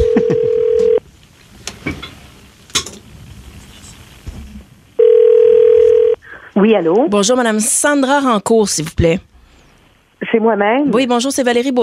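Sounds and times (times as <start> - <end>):
telephone dial tone: 0.0 - 1.0, 5.0 - 6.2
speech: 0.2 - 0.6, 6.6 - 9.3, 10.3 - 11.8.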